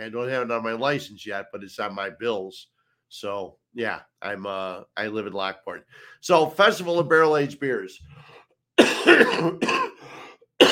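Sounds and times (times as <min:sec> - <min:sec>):
speech: 0:00.0 - 0:09.9
harsh coughs with a rasping throaty tail: 0:08.8 - 0:10.6.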